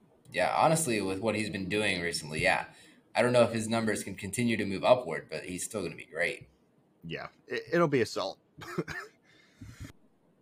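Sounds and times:
speech: 0.3s - 9.7s
person coughing: 8.6s - 9.9s.

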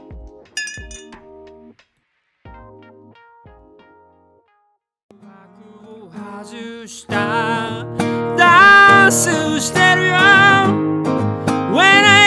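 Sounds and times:
chiming tuned tones: 0.6s - 1.2s
glasses clinking in a toast: 0.6s - 1.2s
speech: 6.4s - 12.1s.

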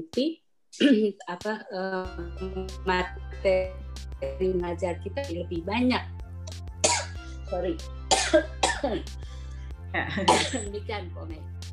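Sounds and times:
speech: 0.0s - 6.1s, 7.5s - 9.3s, 9.9s - 11.7s
dry hacking coughs: 6.8s - 7.3s, 8.1s - 8.9s, 10.1s - 10.7s.

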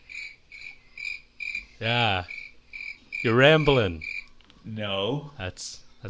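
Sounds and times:
crickets chirping: 0.0s - 4.3s
speech: 1.8s - 2.4s, 3.2s - 6.0s.

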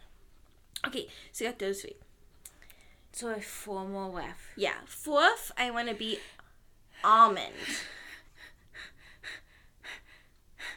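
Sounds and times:
speech: 0.9s - 2.1s, 3.2s - 6.4s, 7.0s - 8.0s
quick rhythmic panting breaths: 7.7s - 10.7s.

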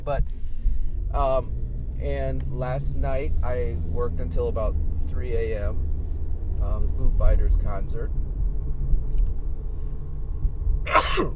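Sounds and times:
speech: 0.0s - 0.4s, 1.1s - 5.9s, 6.6s - 8.2s, 10.8s - 11.3s
steady low rumble: 0.0s - 11.3s
person sneezing: 10.9s - 11.3s.

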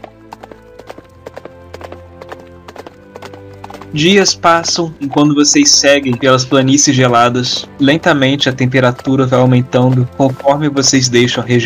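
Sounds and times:
horse hooves galloping: 0.0s - 11.6s
speech: 3.9s - 11.6s.

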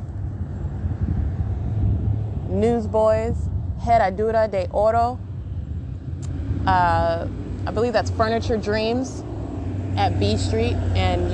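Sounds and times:
commercial jet airliner flying overhead: 0.0s - 11.3s
speech: 2.6s - 5.2s, 6.6s - 9.2s, 10.0s - 11.3s.

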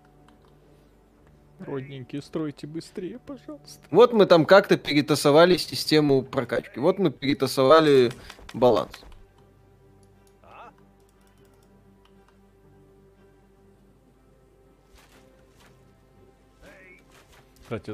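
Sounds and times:
speech: 1.6s - 9.1s, 17.7s - 17.9s
computer keyboard clacking: 11.0s - 12.2s.

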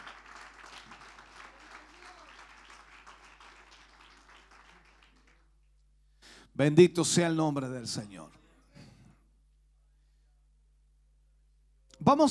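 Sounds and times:
audience at a church service applauding: 0.0s - 5.6s
speech: 6.6s - 8.4s, 12.1s - 12.2s.

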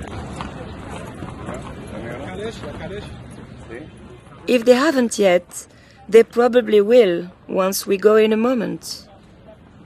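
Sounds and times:
horse hooves of horse-drawn carriages clip-clopping on a pedestrian walkway: 0.0s - 4.5s
speech: 2.4s - 9.1s.

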